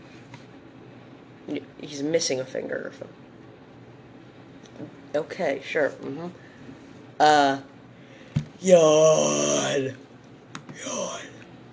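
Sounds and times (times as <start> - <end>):
speech: 1.5 - 3.2, 4.8 - 6.4, 7.2 - 7.7, 8.6 - 10.0
breathy groaning vocal sounds: 8.6 - 9.9, 10.8 - 11.4
person yawning loudly: 8.6 - 9.9, 10.8 - 11.4.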